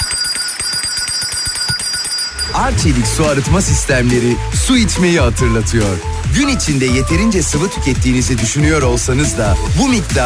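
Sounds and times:
bright sustained bell chime: 0:00.0 - 0:04.3
quick rhythmic pulse of low thumps: 0:02.3 - 0:10.2
speech: 0:02.6 - 0:10.2.

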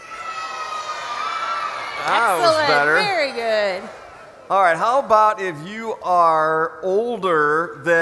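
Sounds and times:
large audience of children shouting and screaming: 0:00.0 - 0:03.0
speech: 0:02.0 - 0:08.0.

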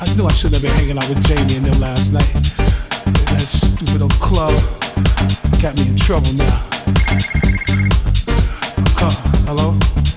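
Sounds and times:
speech: 0:00.1 - 0:02.7, 0:03.4 - 0:10.1
phone ringing on an outgoing call to a cell phone: 0:07.0 - 0:07.9.

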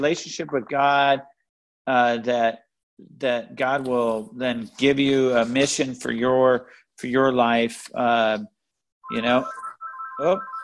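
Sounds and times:
speech: 0:00.0 - 0:08.5, 0:09.1 - 0:09.6, 0:10.2 - 0:10.6
church phone ringtone from incoming call: 0:09.0 - 0:10.6.

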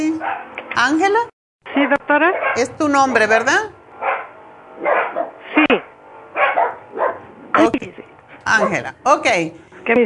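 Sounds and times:
speech: 0:00.0 - 0:03.8, 0:07.6 - 0:10.0
dog barks: 0:00.2 - 0:00.6, 0:02.2 - 0:02.6, 0:04.0 - 0:05.4, 0:06.4 - 0:07.3, 0:08.5 - 0:08.9.

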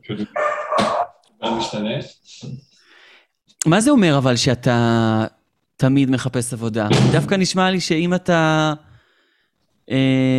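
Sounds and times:
speech: 0:00.0 - 0:00.6, 0:01.6 - 0:02.6, 0:03.6 - 0:08.9, 0:09.9 - 0:10.3
dog barking: 0:00.4 - 0:01.2.

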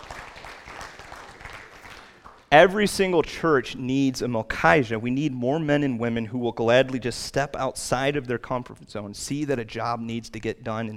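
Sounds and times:
Baptist church audience applauding: 0:00.0 - 0:02.5
speech: 0:02.5 - 0:10.9.

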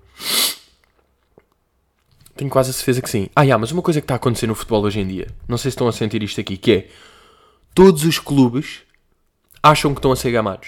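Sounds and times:
person sneezing: 0:00.0 - 0:00.8
speech: 0:02.4 - 0:08.9, 0:09.6 - 0:10.6.

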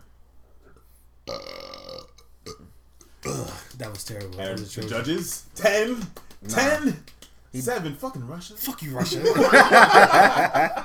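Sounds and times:
loud drawn-out burp: 0:01.3 - 0:03.8
speech: 0:03.3 - 0:10.8
laughter: 0:08.9 - 0:10.8.

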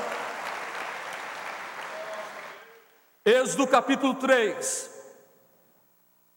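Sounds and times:
congregation applauding loudly: 0:00.0 - 0:03.0
speech: 0:03.2 - 0:04.9.

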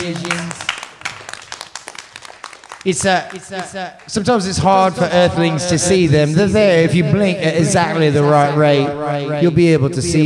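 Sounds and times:
audience applause for a band being introduced: 0:00.0 - 0:04.2
speech: 0:02.8 - 0:10.2.

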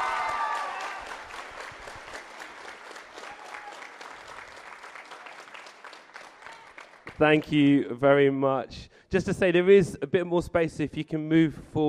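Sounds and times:
cheering voices: 0:00.0 - 0:04.3, 0:05.0 - 0:06.9
crowd applauding for a speaker being introduced: 0:00.0 - 0:07.2
speech: 0:07.2 - 0:11.8.

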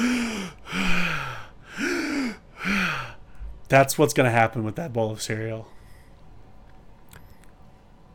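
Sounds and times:
person gasping for breath after climbing stairs: 0:00.0 - 0:03.4
speech: 0:03.7 - 0:05.8.

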